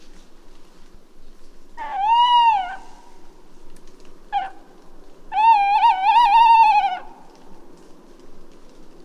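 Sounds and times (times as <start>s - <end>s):
tawny owl hooting: 1.8s - 3.3s, 4.3s - 4.6s, 5.3s - 7.3s.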